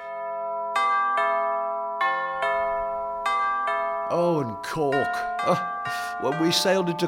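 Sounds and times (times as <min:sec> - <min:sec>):
church bells ringing a slow tune: 0:00.0 - 0:07.0
speech: 0:04.1 - 0:07.0.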